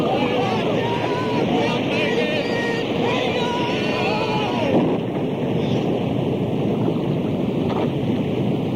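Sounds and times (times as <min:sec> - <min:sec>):
shouting voices: 0:00.0 - 0:04.9
rushing storm wind: 0:00.0 - 0:08.7
storm waves surging against a boat: 0:00.0 - 0:08.7.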